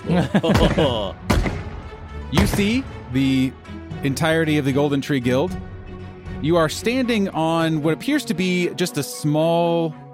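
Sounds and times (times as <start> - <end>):
laughter: 0.0 - 1.2
speech: 0.1 - 1.5, 2.3 - 5.7, 6.4 - 10.0
cannon fire booming in heavy thudding blasts: 0.5 - 2.6.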